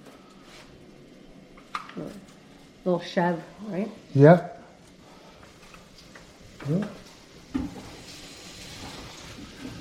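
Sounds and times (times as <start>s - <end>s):
speech: 2.0s - 4.5s, 6.6s - 7.0s
cream sherry sauce sizzling in a pan: 2.6s - 9.7s.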